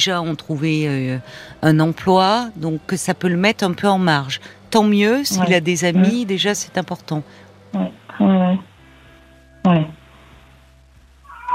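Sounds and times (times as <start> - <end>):
speech: 0.0 - 8.7
quiet hum: 0.0 - 11.5
cat meowing: 11.3 - 11.5.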